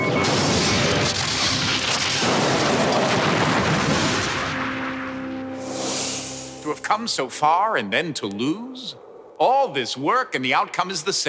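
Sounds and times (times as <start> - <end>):
Borg cube firing weapons in a space video game: 0.0 - 5.2
speech: 6.9 - 11.2.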